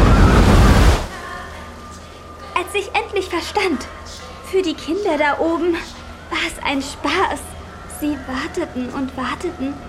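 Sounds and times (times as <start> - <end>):
tidal wave rushing through a sewer: 0.0 - 1.2
speech: 2.7 - 9.8.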